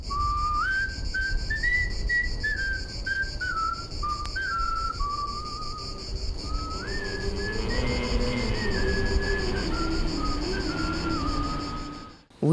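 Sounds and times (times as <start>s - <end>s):
whistled melody of a French Resistance song: 0.0s - 12.3s
constant hiss: 0.0s - 12.5s
lower tones: 1.7s - 12.4s
low hum: 3.4s - 12.5s.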